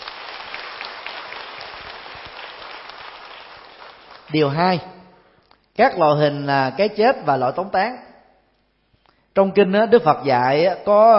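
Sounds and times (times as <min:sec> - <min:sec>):
crowd applauding: 0:00.0 - 0:04.5
speech: 0:04.3 - 0:05.0, 0:05.8 - 0:08.1, 0:09.4 - 0:11.1.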